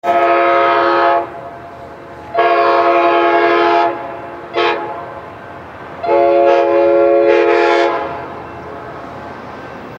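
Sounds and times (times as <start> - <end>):
train horn: 0.0 - 1.6, 2.3 - 5.3, 6.0 - 8.4.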